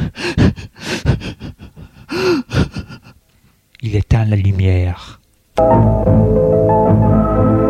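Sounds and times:
woman sobbing with gasping breaths and whimpers: 0.0s - 3.3s
speech: 3.9s - 7.6s.

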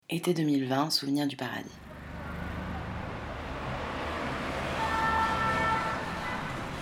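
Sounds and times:
speech: 0.1s - 1.9s
city car traffic rumble: 1.7s - 6.8s.

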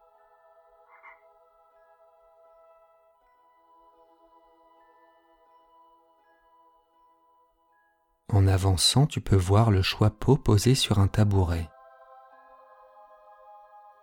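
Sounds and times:
toads croaking in a droning chorus: 0.9s - 1.4s
speech: 8.3s - 11.7s.

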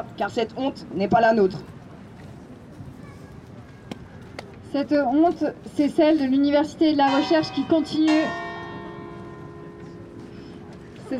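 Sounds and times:
speech: 0.0s - 1.8s, 4.7s - 8.4s
outdoor murmur: 0.0s - 11.1s
church bells ringing: 7.0s - 11.1s.

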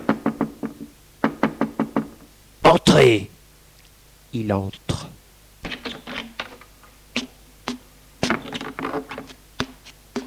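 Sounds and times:
knocking on a wooden office door: 0.0s - 2.2s
speech: 2.8s - 3.3s, 4.3s - 5.0s.

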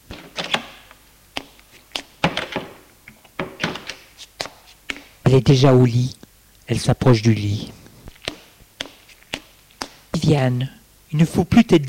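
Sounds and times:
bedroom door opening as someone enters: 0.1s - 1.0s, 2.2s - 4.0s
speech: 5.3s - 7.8s, 10.2s - 11.8s.

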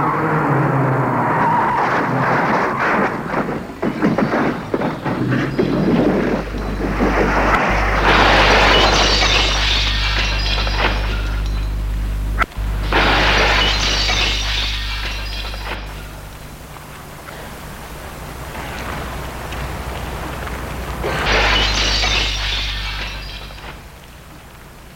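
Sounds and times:
steady low car engine rumble: 0.2s - 24.9s
hissing scatter of glass debris: 1.4s - 24.9s
car smashing into shop window glass: 3.3s - 11.9s, 12.6s - 16.7s, 21.0s - 24.0s.

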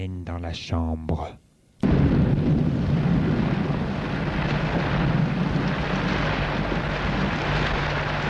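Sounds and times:
speech: 0.0s - 1.4s
thunder rumbling during a storm: 1.8s - 8.2s.

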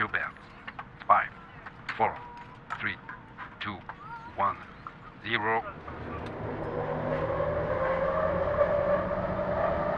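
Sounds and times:
speech: 2.0s - 3.8s, 5.2s - 5.8s
hyperloop train launching roar and whine sound effect: 5.9s - 9.9s.

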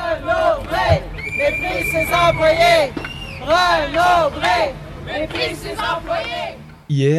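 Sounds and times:
crowd of strikers chanting and shouting on a picket line at a bookstore branch: 0.0s - 6.9s
sustained whistle-like tone: 0.9s - 3.8s
speech: 1.5s - 7.1s.

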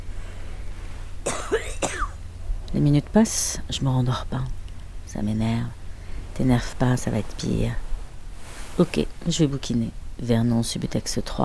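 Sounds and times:
person with a persistent nightly cough coughing at night: 1.3s - 2.2s
speech: 2.7s - 4.6s, 5.2s - 5.8s, 6.4s - 7.8s, 8.8s - 11.4s.

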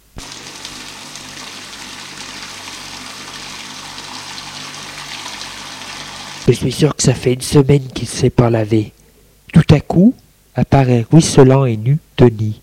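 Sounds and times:
water running steadily from a tap in a kitchen: 0.2s - 6.6s
speech: 6.5s - 9.0s, 9.7s - 12.6s.

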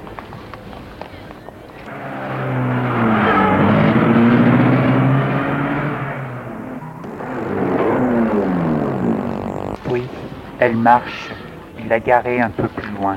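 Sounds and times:
car engine revving and pulling away: 1.9s - 10.0s
speech: 10.6s - 13.1s.

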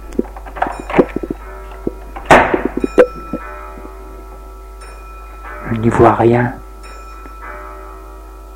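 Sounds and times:
smaller knocks and clicks: 0.0s - 3.5s
faint metallic ringing: 0.0s - 8.5s
door slamming shut: 2.2s - 2.8s
speech: 5.7s - 6.6s.

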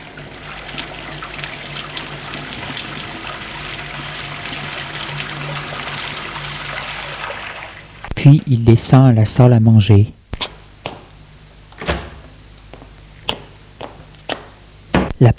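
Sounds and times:
shower water running: 0.0s - 8.1s
speech: 8.2s - 10.2s.

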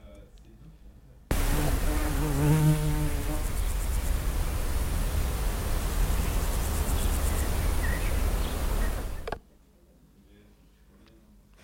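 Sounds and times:
fly buzzing: 1.3s - 9.3s
loud hiss: 1.3s - 9.4s.

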